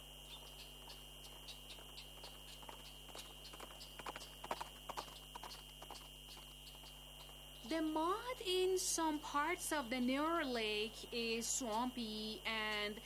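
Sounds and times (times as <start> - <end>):
constant low electrical-sounding hum: 0.0 - 13.0
hooves of a hired horse being ridden at a walk: 0.4 - 7.4
speech: 7.7 - 13.0.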